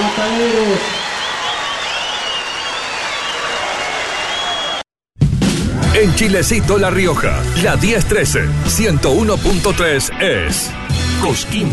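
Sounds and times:
crowd applauding a children's choir: 0.0 - 4.8
people cheering: 0.0 - 4.9
speech: 6.0 - 11.7.

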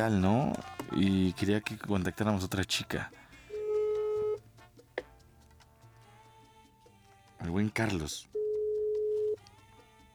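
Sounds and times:
speech: 0.0 - 3.2, 7.4 - 8.4
phone ringback tone of unanswered dialed call: 3.5 - 4.4, 8.3 - 9.4.

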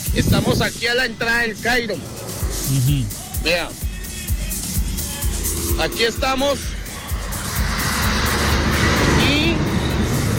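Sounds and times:
cars rumbling along a road: 0.0 - 10.3
speech: 0.2 - 3.8, 5.7 - 6.7.

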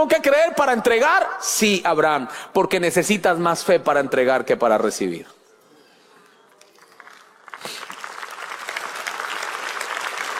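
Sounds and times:
speech: 0.0 - 5.4
large audience applauding: 6.6 - 10.3.

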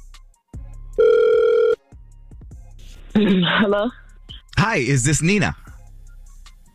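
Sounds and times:
telephone ringback tone on outgoing call over a phone line: 1.0 - 1.8
speech: 3.2 - 4.0, 4.6 - 5.7.

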